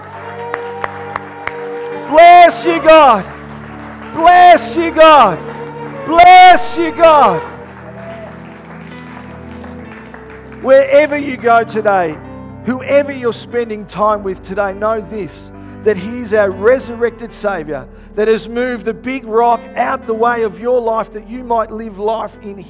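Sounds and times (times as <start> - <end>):
audience clapping in praise: 0.0 - 11.8
man calling out a short phrase: 2.1 - 3.2, 6.1 - 7.5
speech: 2.1 - 3.4, 4.2 - 5.5, 6.1 - 7.5, 10.6 - 22.6.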